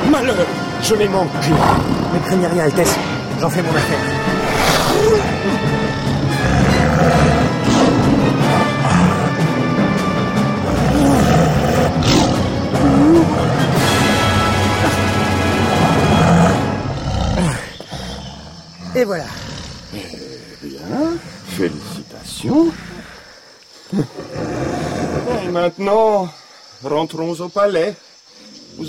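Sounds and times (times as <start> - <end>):
speech: 0.2 - 4.4, 19.0 - 19.4, 21.1 - 21.8, 22.4 - 22.8, 25.5 - 28.1
tiger roaring from a branch in a jungle: 1.4 - 2.5, 4.1 - 20.5, 24.1 - 25.6.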